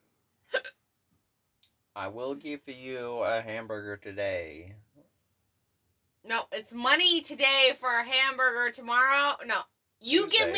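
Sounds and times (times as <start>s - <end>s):
hiccup: 0.5s - 0.7s
speech: 2.0s - 4.9s, 6.2s - 10.5s.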